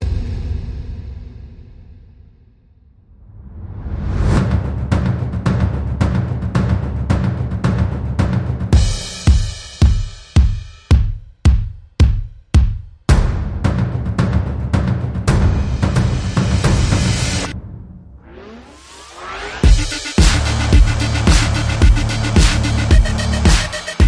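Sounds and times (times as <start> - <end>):
bass: 3.4 - 18.6, 19.2 - 24.0
synths: 18.2 - 24.0.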